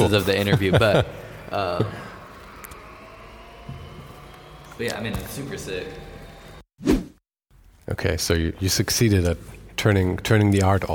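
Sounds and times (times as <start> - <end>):
laughter: 0.0 - 5.7
speech: 0.1 - 2.1, 4.8 - 6.1, 7.9 - 10.9
sound art engine-like drone evoking a semi truck: 0.9 - 6.6.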